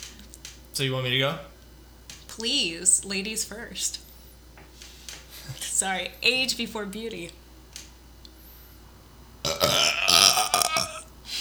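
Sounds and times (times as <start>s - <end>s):
speech: 0.8s - 1.5s, 2.4s - 4.1s, 5.5s - 7.4s
soft breath: 4.0s - 5.6s
loud drawn-out raspy gurgling burp: 9.4s - 11.1s.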